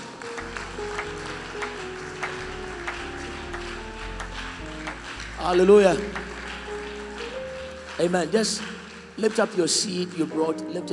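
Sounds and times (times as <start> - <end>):
sustained organ-like chords: 0.0 - 9.4
audience clapping in praise at a Christian worship service: 0.0 - 10.9
speech: 5.4 - 6.2, 8.0 - 10.9.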